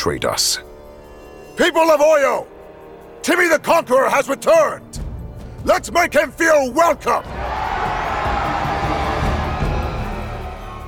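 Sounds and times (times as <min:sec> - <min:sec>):
speech: 0:00.0 - 0:00.7, 0:01.6 - 0:02.5, 0:03.2 - 0:05.0, 0:05.6 - 0:07.6
large crowd cheering and shouting: 0:07.2 - 0:10.8.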